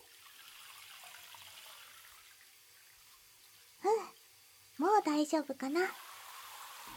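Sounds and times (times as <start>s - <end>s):
running water rinsing shampoo out of hair: 0.0s - 6.9s
speech: 5.0s - 6.0s.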